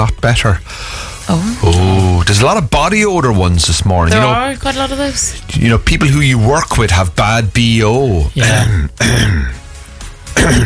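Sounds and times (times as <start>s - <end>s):
speech: 0.0s - 9.6s, 10.4s - 10.6s
person clearing throat with harsh rasping bursts: 8.4s - 9.6s, 10.4s - 10.6s.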